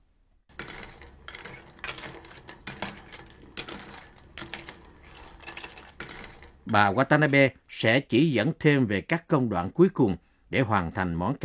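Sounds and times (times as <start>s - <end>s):
utensil clinking and scraping against a pot and shells while stirring soup: 0.5s - 7.8s
speech: 6.7s - 11.4s.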